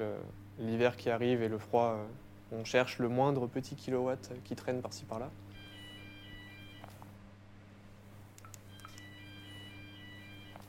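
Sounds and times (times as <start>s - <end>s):
speech: 0.0s - 5.4s
low hum: 0.0s - 10.6s
telephone ringing with an electronic melodic tone: 5.5s - 7.0s, 8.7s - 10.6s.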